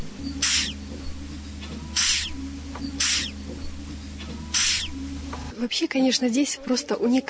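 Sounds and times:
low hum: 0.0 - 5.9
giant hissing cockroach hissing: 0.4 - 0.8, 2.0 - 2.4, 3.0 - 3.3, 4.6 - 4.9
speech: 5.6 - 7.2.

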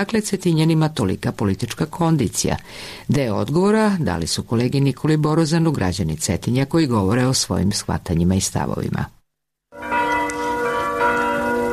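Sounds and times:
speech: 0.0 - 9.2
Serbian Orthodox church bells ringing in Cetinje: 9.7 - 11.7.

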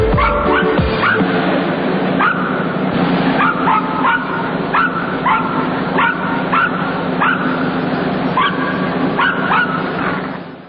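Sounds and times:
several dogs barking and yipping cheerfully in a circus ring: 0.1 - 1.4, 2.2 - 2.8, 3.3 - 7.7, 8.4 - 10.3.

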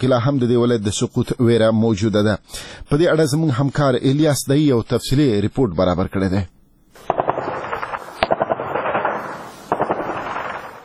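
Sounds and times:
speech: 0.0 - 7.1
heavy-weapons gunfire bursts at the edge of Lashkar Gah city in Helmand: 7.0 - 10.8
sharp isolated gunshot crack: 7.0 - 10.8.

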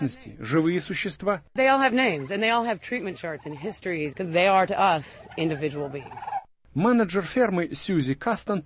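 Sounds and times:
speech: 0.0 - 8.6
turkeys gobbling: 1.7 - 6.5.

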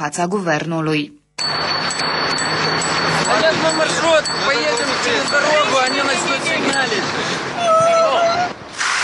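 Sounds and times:
speech: 0.0 - 2.1, 2.7 - 7.7
bicycle horns from crowd of cyclists: 1.4 - 7.2.

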